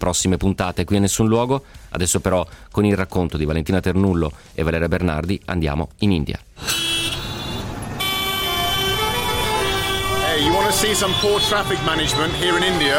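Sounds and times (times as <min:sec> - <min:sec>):
speech: 0:00.0 - 0:06.8, 0:10.4 - 0:12.9
car horns honking in Delhi street traffic: 0:06.6 - 0:12.9.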